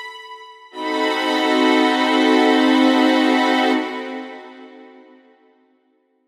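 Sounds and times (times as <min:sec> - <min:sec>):
diminished seventh chord: 0:00.8 - 0:05.3.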